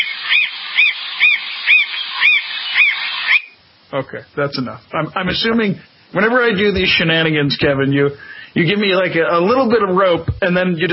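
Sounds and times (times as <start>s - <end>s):
played recording of bird calls: 0.0s - 3.6s
speech: 3.9s - 10.9s.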